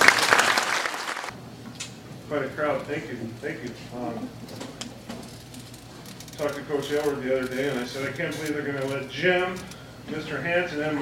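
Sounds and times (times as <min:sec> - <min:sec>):
audience applause: 0:00.0 - 0:01.3
speech: 0:02.3 - 0:04.9, 0:06.4 - 0:10.9.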